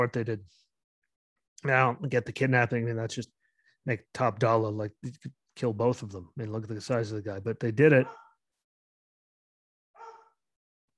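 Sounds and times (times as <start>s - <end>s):
speech: 0.0s - 0.7s, 1.6s - 8.2s
dog barking: 8.0s - 8.4s, 10.0s - 10.4s.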